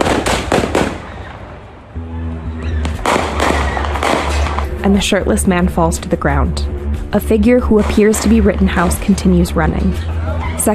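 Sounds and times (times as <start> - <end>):
gunshots in the parking lot of an auto service shop: 0.0 - 1.6, 2.8 - 4.7
speech: 4.8 - 10.7.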